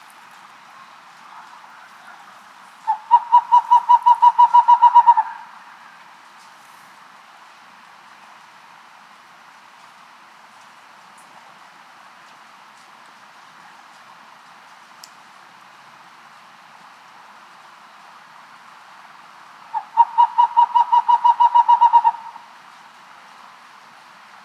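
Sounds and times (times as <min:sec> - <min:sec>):
Western Screech Owl: 0:02.9 - 0:05.9, 0:19.7 - 0:22.5.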